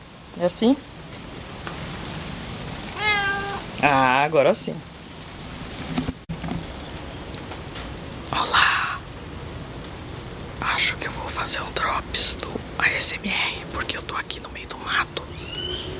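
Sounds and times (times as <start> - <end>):
rain pattering in the woods: 0.0 - 15.9
speech: 0.4 - 0.9, 3.8 - 4.9, 11.5 - 15.9
cat meowing: 2.9 - 3.8.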